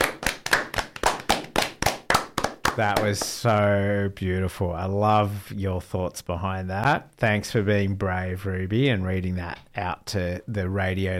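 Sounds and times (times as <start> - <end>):
single person clapping hands in a steady rhythm: 0.0 - 3.4
speech: 2.8 - 11.1.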